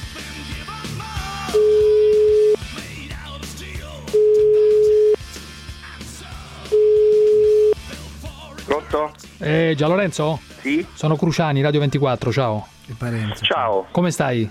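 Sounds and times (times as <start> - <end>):
telephone call tone beeps: 1.6 - 2.6, 4.2 - 5.2, 6.7 - 7.8
speech: 8.9 - 14.4.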